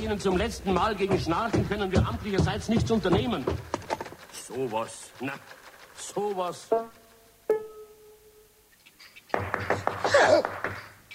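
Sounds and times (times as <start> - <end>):
speech: 0.0 - 3.8, 4.5 - 7.0
knocking on a door: 0.7 - 4.1, 9.4 - 11.0.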